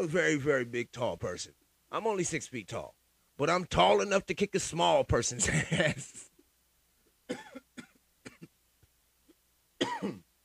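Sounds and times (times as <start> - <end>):
speech: 0.0 - 6.3
raspy coughs: 7.3 - 8.6, 9.8 - 10.3
throat clearing: 9.8 - 10.3.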